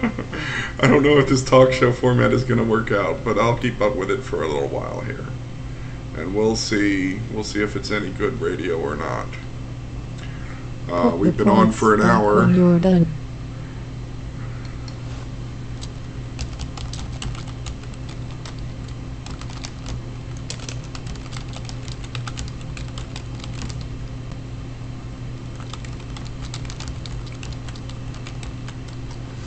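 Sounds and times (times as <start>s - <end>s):
speech: 0.0s - 5.4s, 6.2s - 9.4s, 10.9s - 13.2s
low constant hum: 0.0s - 29.4s
typing on a computer keyboard: 15.8s - 23.9s, 25.5s - 29.2s.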